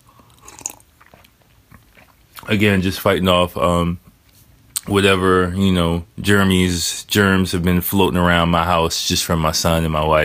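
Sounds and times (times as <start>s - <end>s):
person slurping a sip of a beverage: 0.0s - 1.4s
speech: 2.5s - 4.0s, 4.9s - 10.2s.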